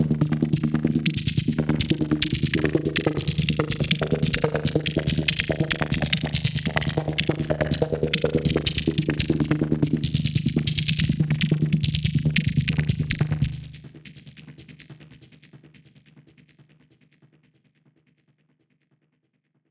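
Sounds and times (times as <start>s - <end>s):
psytrance lead line in D sharp at 142 BPM: 0.0s - 13.8s.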